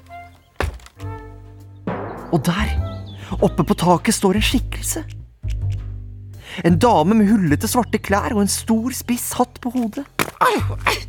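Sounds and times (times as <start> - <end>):
ladder set against a cave wall: 0.6 - 1.0
speech: 2.3 - 5.2, 6.6 - 11.0.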